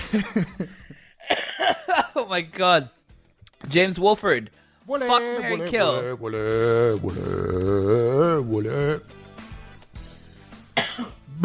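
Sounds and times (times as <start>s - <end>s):
laughter: 0.0s - 2.2s
speech: 0.1s - 1.0s, 1.6s - 3.0s, 3.6s - 9.1s
harsh coughs: 1.2s - 2.1s, 10.8s - 11.4s.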